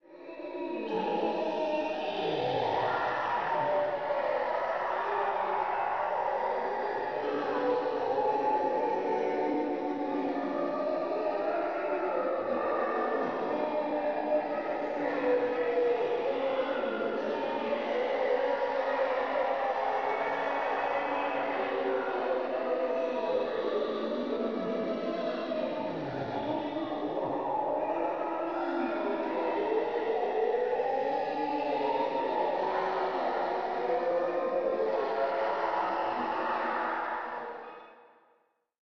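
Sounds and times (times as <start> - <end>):
group of people moaning in a subway: 0.4 - 37.8.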